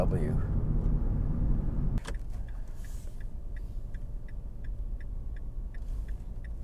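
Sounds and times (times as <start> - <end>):
speech: 0.0 - 0.5
low hum of car engine and road inside the cabin: 0.0 - 6.6
car turn signal blinker ticking: 0.5 - 6.6.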